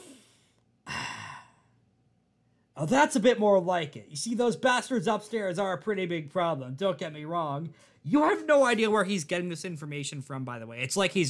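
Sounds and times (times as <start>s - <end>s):
deep breath in: 0.0s - 1.9s
speech: 2.8s - 11.2s.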